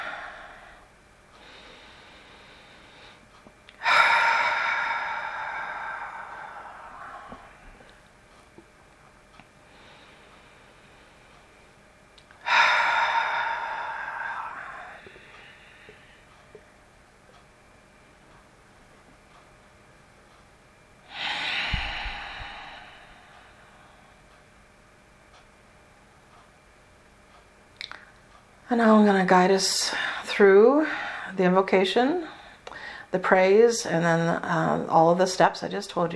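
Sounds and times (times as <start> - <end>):
long slow deep breaths taken to center oneself: 0.0 - 8.1, 9.6 - 11.6, 12.4 - 16.7, 21.0 - 24.4, 29.9 - 31.4, 32.2 - 33.1
speech: 28.7 - 32.4, 33.1 - 36.1.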